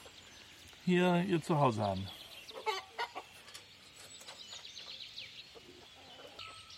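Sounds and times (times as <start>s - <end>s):
bird chatter and clucking: 0.0s - 6.7s
speech: 0.8s - 2.2s
peacock calling in an aviary: 1.3s - 6.7s.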